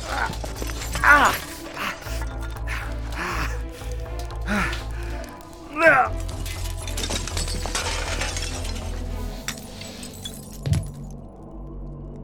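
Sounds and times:
person breathing strained and gasping: 0.0s - 6.2s
broken window glass crunching and clinking: 0.0s - 11.3s.

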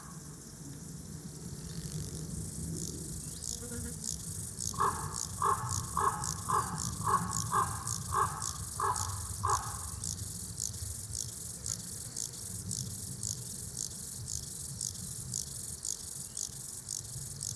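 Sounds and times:
Chorthippus apricarius grasshoppers chirring in a forest: 1.2s - 17.5s
crow cawing in hoarse calls: 4.8s - 10.2s.

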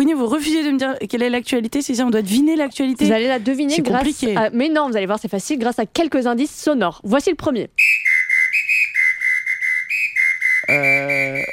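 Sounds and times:
speech: 0.0s - 8.2s, 10.7s - 11.5s
shrill pea whistle blasts: 7.8s - 11.5s.

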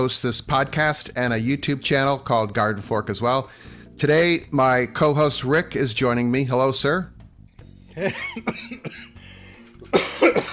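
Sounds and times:
speech: 0.0s - 7.2s, 8.0s - 9.1s, 9.9s - 10.5s
person in a harsh coughing fit: 8.0s - 9.2s, 9.8s - 10.5s.

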